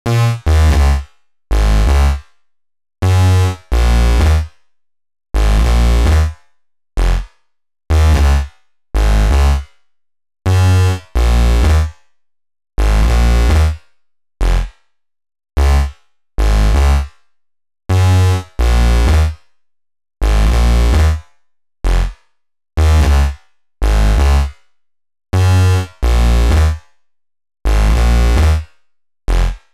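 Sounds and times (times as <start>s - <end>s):
bass line: 0.1s - 2.2s, 3.0s - 4.4s, 5.4s - 6.3s, 7.9s - 8.4s, 9.0s - 9.6s, 10.5s - 11.9s, 12.8s - 13.8s, 14.4s - 14.7s, 15.6s - 17.0s, 17.9s - 19.3s, 20.2s - 21.2s, 21.9s - 22.1s, 22.8s - 24.5s, 25.4s - 26.7s, 27.7s - 28.6s, 29.3s - 29.6s.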